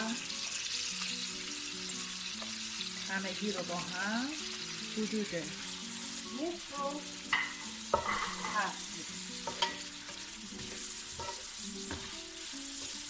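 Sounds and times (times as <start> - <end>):
meat and onion frying with turmeric and black pepper in a hot pan: 0.0 - 13.0
speech: 3.1 - 5.7, 6.3 - 9.6
utensil scraping against the pan while stirring: 7.3 - 13.0.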